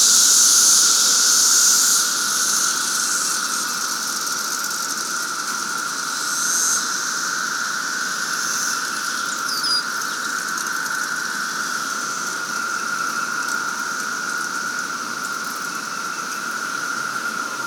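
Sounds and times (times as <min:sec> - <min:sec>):
massed periodical cicadas droning at a cemetery during the 2024 emergence: 0:00.0 - 0:17.6
bird chirp: 0:09.3 - 0:10.3.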